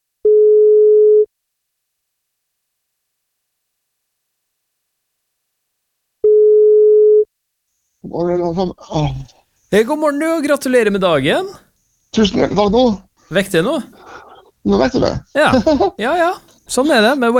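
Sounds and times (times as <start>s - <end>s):
telephone ringback tones while placing a call: 0.2s - 1.3s, 6.2s - 7.3s
speech: 8.1s - 17.3s.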